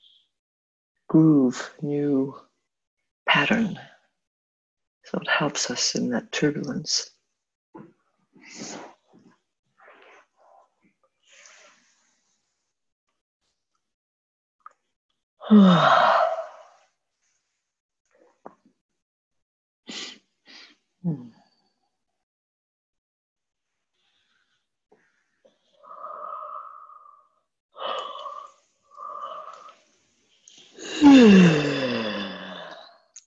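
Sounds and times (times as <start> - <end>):
speech: 1.1 - 2.5, 3.3 - 3.9, 5.1 - 7.2, 7.8 - 8.9, 15.5 - 16.2, 21.0 - 21.4, 31.0 - 31.8
long breathy yawns with a falling drawn-out voice: 15.5 - 16.5, 21.0 - 21.3, 30.8 - 32.8.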